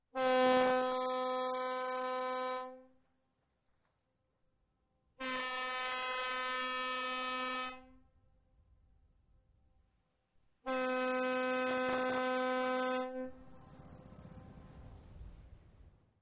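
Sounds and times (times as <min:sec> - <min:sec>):
ferry horn very close: 0:00.1 - 0:03.0, 0:05.2 - 0:08.0, 0:10.6 - 0:14.8.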